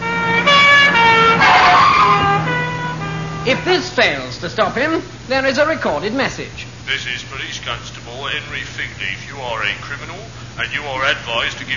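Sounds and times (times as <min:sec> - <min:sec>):
brassy alarm trumpet on an anti-theft handbag blaring: 0:00.0 - 0:05.1
speech: 0:03.4 - 0:11.7.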